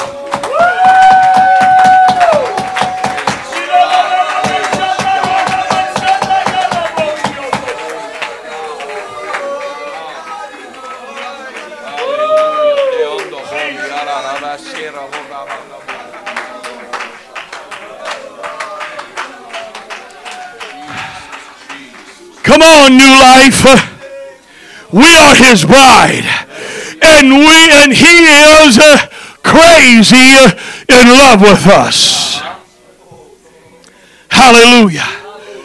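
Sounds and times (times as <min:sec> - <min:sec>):
audience clapping: 0:00.0 - 0:23.4
speech: 0:22.9 - 0:23.9, 0:24.9 - 0:26.5, 0:27.2 - 0:32.4, 0:34.4 - 0:35.2.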